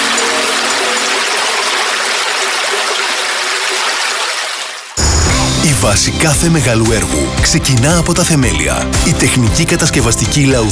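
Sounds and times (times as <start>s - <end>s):
rushing water of a flowing stream: 0.0s - 5.0s
speech: 5.9s - 10.7s.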